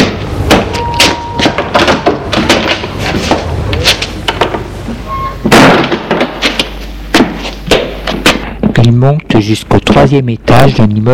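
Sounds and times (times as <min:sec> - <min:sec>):
heavy entrance door of an apartment building opening and closing: 0:00.0 - 0:06.6
loud bang of heavy entrance door: 0:00.0 - 0:08.7
speech: 0:09.0 - 0:11.1.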